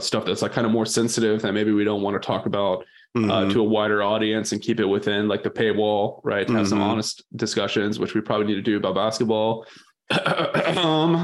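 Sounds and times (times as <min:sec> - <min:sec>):
speech: 0:00.0 - 0:11.2
throat clearing: 0:10.1 - 0:11.2.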